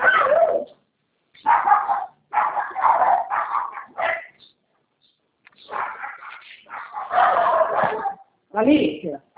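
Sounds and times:
dog barking: 0:00.0 - 0:00.7, 0:01.4 - 0:04.4, 0:05.6 - 0:08.4
speech: 0:08.6 - 0:09.3.

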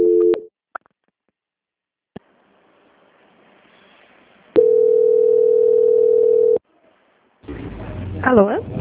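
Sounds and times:
telephone line tone during a bank call transfer: 0:00.0 - 0:00.5, 0:04.6 - 0:06.6.

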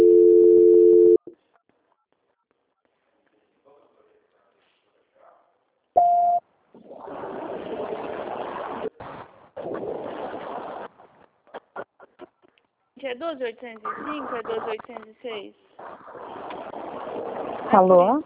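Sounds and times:
steady telephone line tone during a call transfer: 0:00.0 - 0:01.2
short beep: 0:06.0 - 0:06.4
speech: 0:13.2 - 0:16.0, 0:17.7 - 0:18.2.

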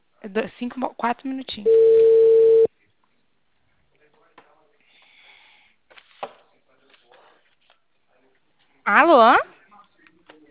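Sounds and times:
speech: 0:00.2 - 0:02.3, 0:08.8 - 0:09.5
telephone beep while dialing a call: 0:01.7 - 0:02.7.

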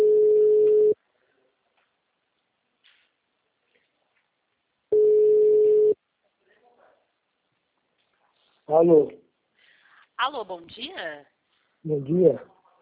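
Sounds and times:
telephone ringback tone while a call is being placed: 0:00.0 - 0:01.0, 0:04.9 - 0:06.0
speech: 0:08.8 - 0:09.2, 0:10.2 - 0:12.6.

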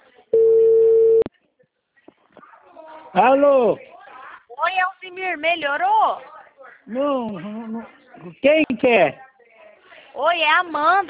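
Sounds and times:
telephone busy tone beep as a call cuts off: 0:00.4 - 0:01.3
speech: 0:03.1 - 0:03.9, 0:04.7 - 0:09.2, 0:10.2 - 0:11.0.

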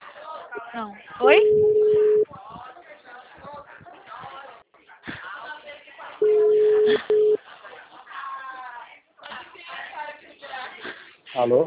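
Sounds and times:
speech: 0:00.7 - 0:02.7, 0:11.4 - 0:11.6
telephone line tone beeps after a dropped call: 0:01.2 - 0:02.3, 0:06.2 - 0:07.4
phone-band speech: 0:01.2 - 0:02.6, 0:06.2 - 0:07.4.

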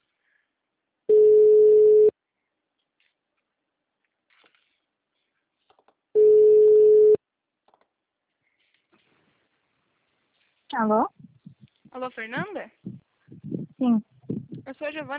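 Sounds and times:
ringback tone of an outgoing telephone call: 0:01.1 - 0:02.1, 0:06.2 - 0:07.2
speech: 0:10.8 - 0:11.1, 0:12.0 - 0:13.0, 0:13.8 - 0:14.1, 0:14.7 - 0:15.1.

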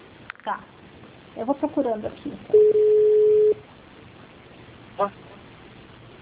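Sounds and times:
speech: 0:00.4 - 0:00.8, 0:01.4 - 0:02.9, 0:05.0 - 0:05.2
incoming call electronic tone over a telephone line: 0:02.5 - 0:03.6
telephone line hiss: 0:02.5 - 0:03.6.

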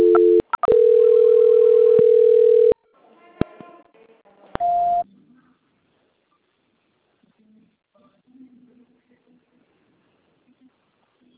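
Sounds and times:
telephone tones during a call transfer: 0:00.0 - 0:02.8.

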